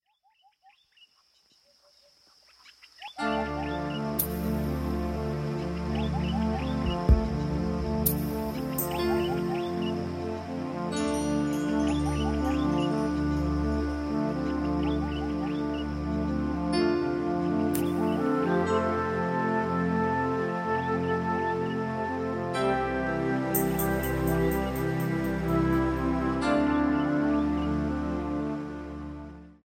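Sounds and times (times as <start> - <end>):
instrumental music: 3.2 - 29.6.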